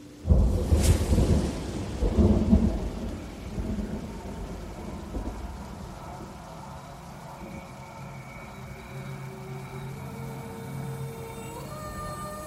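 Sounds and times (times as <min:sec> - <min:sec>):
steady rain hissing: 0:00.0 - 0:12.4
deep rumbling roll of thunder: 0:00.2 - 0:08.3.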